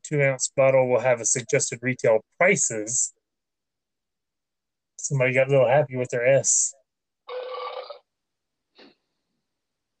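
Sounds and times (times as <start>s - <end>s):
speech: 0.1s - 3.2s, 5.1s - 7.4s
burp machine belching: 7.3s - 8.0s.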